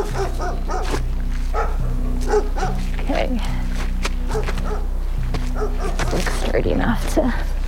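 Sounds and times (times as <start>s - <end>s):
reservation dogs giving short excited barks and yips greeting visitors: 0.0s - 2.9s, 4.2s - 6.3s
speech: 6.6s - 7.5s.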